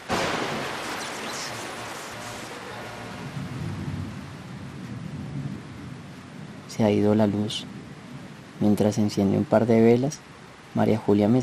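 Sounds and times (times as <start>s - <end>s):
deep thunder rumble: 0.0s - 8.9s
heavy rain pouring over green fields: 0.0s - 11.4s
speech: 6.8s - 7.8s, 8.6s - 11.4s.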